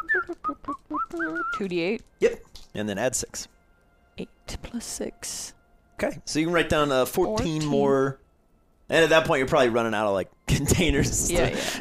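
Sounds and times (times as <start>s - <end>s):
person whistling a tune: 0.0s - 1.7s
speech: 1.6s - 3.6s, 4.2s - 8.2s, 8.9s - 11.8s.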